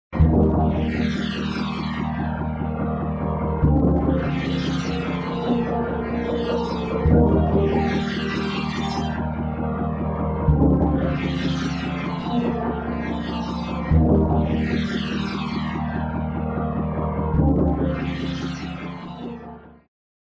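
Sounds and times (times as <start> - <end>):
bubbly wet phaser synth: 0.2 - 19.4.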